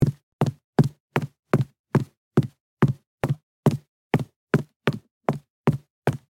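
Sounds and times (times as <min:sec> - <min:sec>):
high heels running on carpet: 0:00.0 - 0:06.2.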